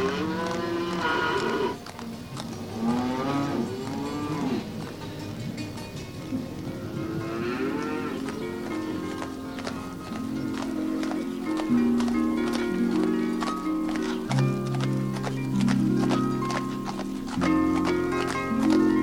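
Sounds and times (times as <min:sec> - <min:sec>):
cows mooing: 0:00.0 - 0:19.0.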